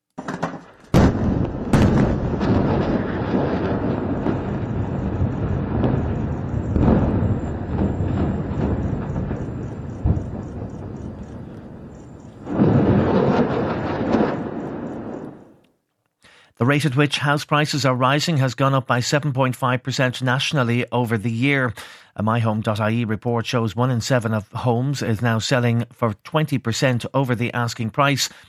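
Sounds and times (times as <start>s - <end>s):
huge booming explosions in Beirut Lebanon: 0.3s - 15.6s
speech: 16.7s - 28.4s.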